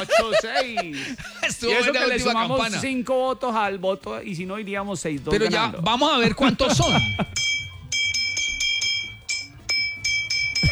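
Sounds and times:
laughter: 0.0 - 2.8, 6.2 - 7.4
speech: 0.0 - 7.5
low murmur: 0.0 - 10.7
bell ringing: 6.8 - 10.7.

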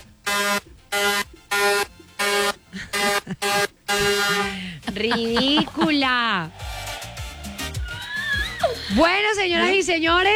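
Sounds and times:
buzzy harmonic handheld horn blasts: 0.2 - 5.9
laughter: 2.6 - 6.7, 7.6 - 10.0
speech: 5.0 - 6.6, 8.9 - 10.3.

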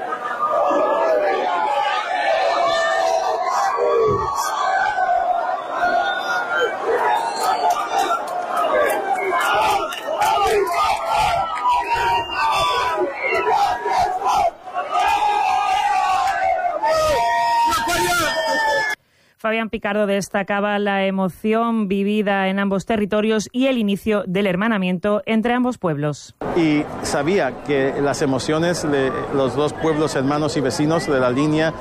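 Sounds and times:
large crowd of citizens shouting, cheering and chanting at a border crossing at midnight: 0.0 - 19.0, 26.4 - 31.7
speech: 19.6 - 31.7.

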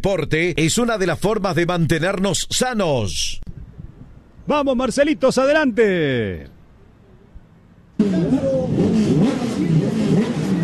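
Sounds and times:
speech: 0.0 - 3.4, 4.5 - 6.6, 8.0 - 9.4
Turismo Carretera racing car engines revving before qualifying in San Nicolás: 8.0 - 10.6.

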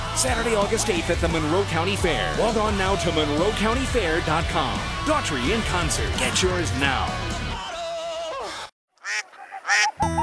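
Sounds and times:
speech: 0.2 - 7.3
ducks quacking loudly in nasal calls: 9.0 - 10.2.

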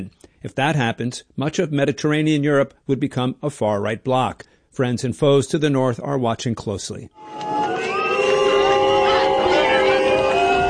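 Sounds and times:
speech: 0.0 - 7.6
large crowd of supporters booing at a campaign rally in Saxony-Anhalt: 7.2 - 10.6.

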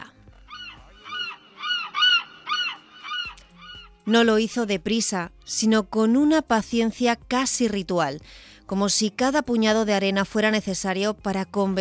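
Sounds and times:
seagulls calling: 0.0 - 4.0
speech: 4.0 - 11.7.

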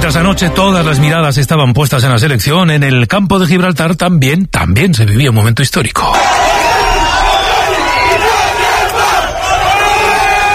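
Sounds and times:
speech: 0.0 - 6.7
crowd of local residents cheering as the Gibraltar border fence is torn down: 6.1 - 10.5.

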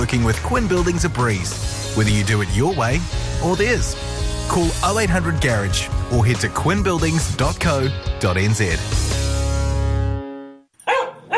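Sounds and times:
speech: 0.1 - 9.2
puppy giving high-pitched barks: 10.8 - 11.3.

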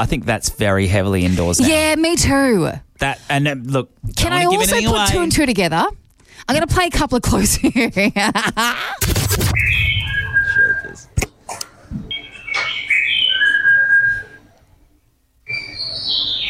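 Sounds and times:
speech: 0.0 - 9.8
loud rough burst of noise: 9.0 - 10.6
birds singing a repeating whistled phrase: 9.6 - 11.0, 12.1 - 14.4, 15.4 - 16.4.

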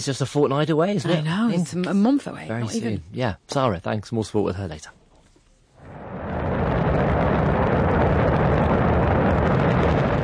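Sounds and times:
speech: 0.0 - 5.0
crewed rocket blasting off from a launch center in Inner Mongolia: 5.8 - 10.2.

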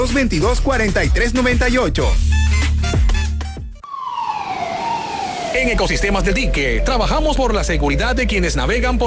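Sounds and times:
speech: 0.0 - 3.1, 5.6 - 9.0
ambulance siren wailing: 3.8 - 7.8.

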